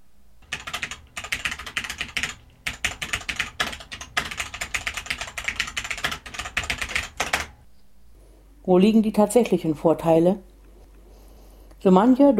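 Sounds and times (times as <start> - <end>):
rapid typing on a mechanical keyboard: 0.4 - 7.6
speech: 8.7 - 10.5, 11.8 - 12.3.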